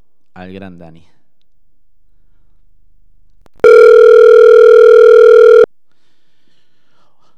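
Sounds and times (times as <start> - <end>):
speech: 0.4 - 1.2
telephone ringing tone while placing a call: 3.6 - 5.7.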